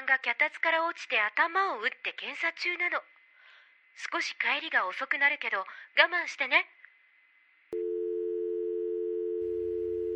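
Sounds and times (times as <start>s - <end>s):
speech: 0.1s - 3.2s, 4.0s - 6.8s
telephone tone after call hang-up: 7.8s - 10.1s.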